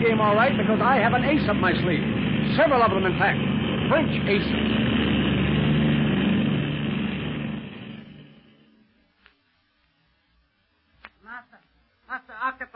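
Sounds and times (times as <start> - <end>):
police airplane engine roaring overhead: 0.0 - 8.8
speech: 0.2 - 4.8.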